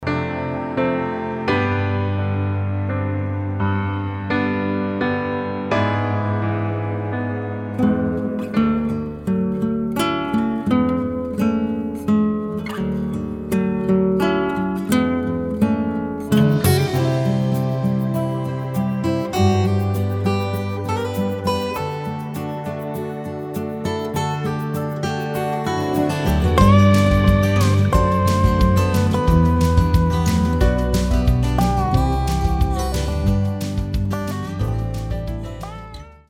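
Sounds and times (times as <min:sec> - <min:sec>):
acoustic instrumental music: 0:00.0 - 0:36.2.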